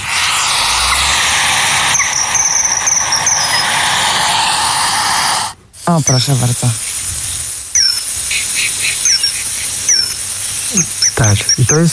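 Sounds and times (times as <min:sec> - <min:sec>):
common kingfisher giving shrill whistling call: 0:00.0 - 0:05.5, 0:07.8 - 0:11.9
steady rushing background: 0:00.0 - 0:05.6
speech: 0:05.9 - 0:06.8, 0:10.7 - 0:11.9.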